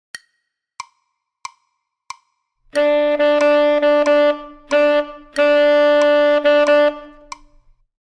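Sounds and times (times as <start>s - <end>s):
tenor saxophone: 2.7s - 7.7s.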